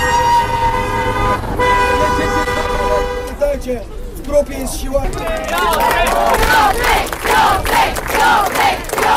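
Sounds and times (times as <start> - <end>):
long steady horn blasts: 0.0 - 3.4
thousands of fans cheering and shouting a street arrival: 5.1 - 9.1.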